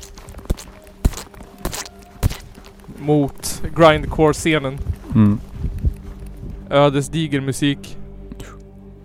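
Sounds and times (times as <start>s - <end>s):
footsteps thudding and squelching: 0.0s - 6.7s
speech: 3.0s - 5.5s, 6.7s - 7.9s.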